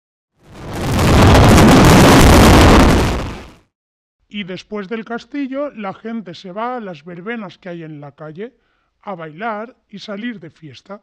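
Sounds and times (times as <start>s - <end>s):
loud dense barrage of firecracker explosions: 0.5s - 3.7s
speech: 4.3s - 11.0s.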